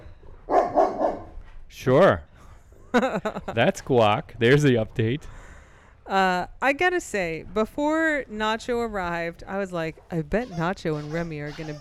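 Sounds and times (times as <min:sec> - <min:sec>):
dog barking: 0:00.5 - 0:01.4
speech: 0:01.7 - 0:02.3, 0:02.9 - 0:05.5, 0:06.1 - 0:11.7
laughter: 0:02.9 - 0:04.2.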